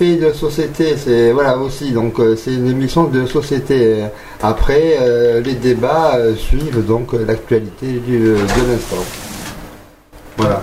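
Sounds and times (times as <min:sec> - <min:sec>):
speech: 0:00.0 - 0:09.2, 0:10.4 - 0:10.6
CD player tray mechanism whirring and sliding as a disc is ejected: 0:08.3 - 0:09.8.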